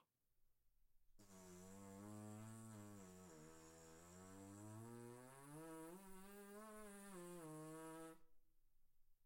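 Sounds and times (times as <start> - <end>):
trombone buzz without mouthpiece: 1.2 - 8.3.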